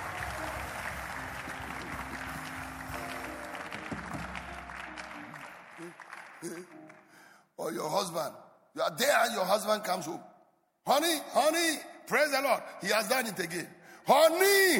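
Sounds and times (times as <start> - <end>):
congregation clapping: 0.0 - 7.3
speech: 7.7 - 10.3, 10.9 - 14.7.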